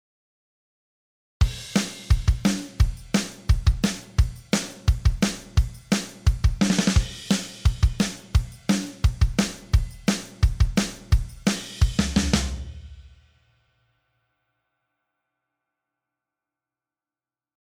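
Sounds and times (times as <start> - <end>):
drums: 1.4 - 13.3.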